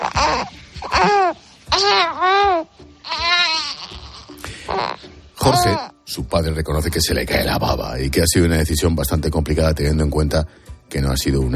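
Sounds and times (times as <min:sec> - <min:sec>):
three-month-old baby cooing and squealing on waking: 0:00.0 - 0:06.0
speech: 0:05.5 - 0:11.5.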